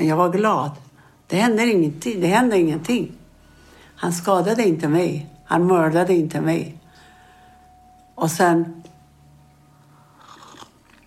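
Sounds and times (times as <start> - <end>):
speech: 0.0 - 3.2, 4.0 - 6.8, 8.2 - 8.8
low steady hum: 0.0 - 11.0
person sipping and swallowing a drink: 10.1 - 11.0.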